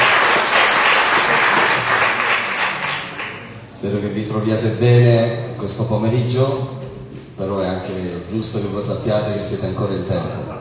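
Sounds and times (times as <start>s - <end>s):
audience applause: 0.0s - 3.6s
speech: 3.8s - 6.8s, 7.4s - 10.5s.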